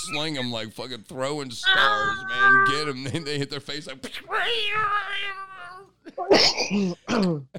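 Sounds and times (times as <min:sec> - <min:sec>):
person imitating a screeching cat: 0:00.0 - 0:00.2, 0:01.6 - 0:03.0, 0:04.3 - 0:05.9
speech: 0:00.0 - 0:05.5, 0:06.1 - 0:07.5.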